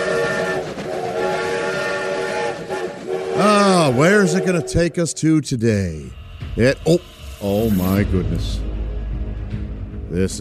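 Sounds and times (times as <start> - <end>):
steam train whistle blowing: 0.0 - 5.0
departing steam train rushing rumbling chug: 0.0 - 8.7
speech: 3.4 - 8.7, 10.1 - 10.3.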